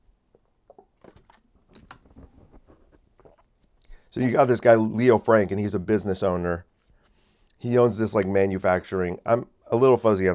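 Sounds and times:
person slurping water: 0.2s - 4.1s
person swallowing: 0.3s - 4.1s
mouth clicks: 0.3s - 4.2s
speech: 4.1s - 6.7s, 7.6s - 10.3s.

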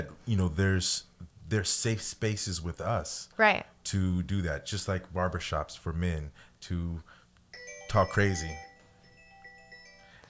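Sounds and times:
speech: 0.0s - 7.2s, 7.9s - 8.7s
short electronic chime from a phone: 7.5s - 10.2s.

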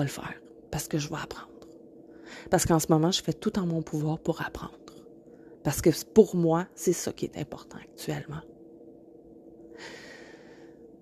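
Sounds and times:
speech: 0.0s - 1.5s, 2.3s - 4.8s, 5.6s - 8.5s, 9.8s - 10.0s
heavy breath: 9.7s - 10.8s.

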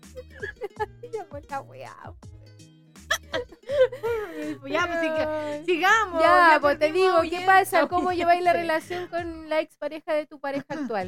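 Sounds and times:
hiccups: 0.2s - 0.7s
speech: 1.4s - 2.3s, 3.3s - 11.0s
soft vocal sounds and breathy laughter: 3.1s - 4.6s.

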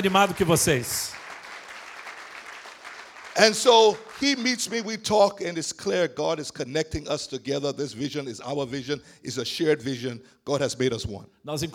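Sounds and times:
speech: 0.0s - 1.2s, 3.4s - 11.7s
audience applause: 0.0s - 4.5s.

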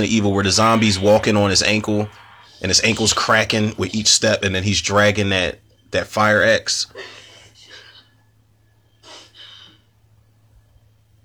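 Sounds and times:
steady low hum: 0.0s - 5.2s
speech: 0.0s - 7.2s
sniffling: 6.9s - 8.3s, 8.9s - 9.9s.

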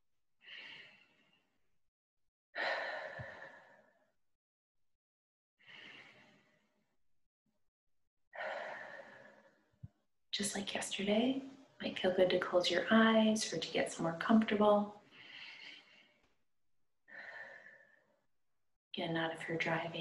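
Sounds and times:
slow breathing in through the nose and out through the mouth: 0.4s - 1.7s, 2.6s - 4.2s, 5.6s - 7.0s, 8.4s - 10.0s, 15.0s - 16.4s, 17.1s - 18.3s
speech: 10.4s - 15.0s, 19.0s - 19.9s.

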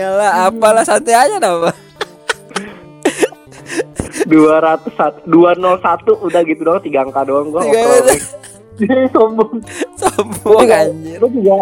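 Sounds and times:
speech: 0.0s - 1.8s, 4.3s - 11.6s
laughter: 1.6s - 4.6s, 7.6s - 9.1s, 9.7s - 10.8s
harsh coughs: 2.3s - 4.2s.

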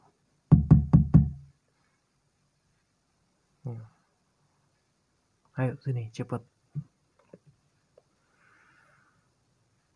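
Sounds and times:
firm knocking on a door: 0.5s - 1.5s
speech: 3.7s - 4.0s, 5.6s - 6.9s.

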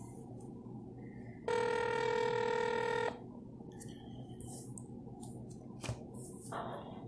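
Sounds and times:
electronic telephone ringback tone of outgoing call ringing unanswered: 1.4s - 3.2s.

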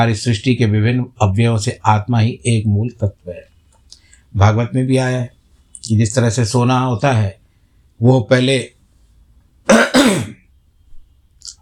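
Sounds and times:
speech: 0.0s - 3.5s, 4.3s - 7.4s, 8.0s - 8.8s, 9.7s - 10.2s
person clearing throat: 9.7s - 10.4s.

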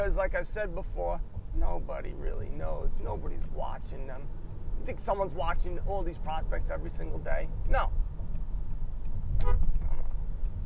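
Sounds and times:
speech: 0.0s - 8.0s, 9.4s - 9.8s
faint traffic: 0.0s - 10.6s
low rumble of engine and road noise: 0.0s - 10.6s
short car horn honk: 9.4s - 10.0s.

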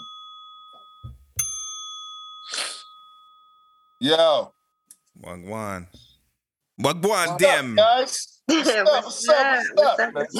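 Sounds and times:
notification bell ding: 0.0s - 4.1s
soft thumps: 1.0s - 1.5s
speech: 4.0s - 4.6s, 5.2s - 6.1s, 6.8s - 10.3s.

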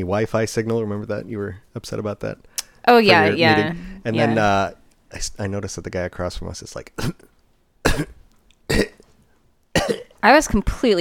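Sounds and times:
speech: 0.0s - 7.3s, 8.0s - 9.0s, 10.2s - 11.0s
person imitating raspy coughs of a man: 7.9s - 9.0s, 9.8s - 10.2s.

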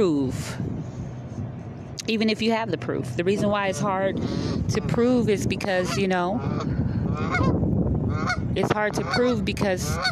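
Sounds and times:
speech: 0.0s - 1.0s, 2.1s - 7.6s, 8.2s - 10.1s
low rumble of activity: 0.0s - 10.1s
ducks quacking: 4.7s - 10.1s.

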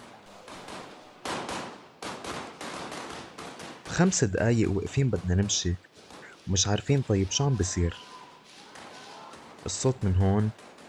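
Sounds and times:
bursts of gunfire crackling and rumbling: 0.0s - 10.8s
speech: 4.0s - 5.9s, 6.5s - 8.1s, 9.6s - 10.7s.

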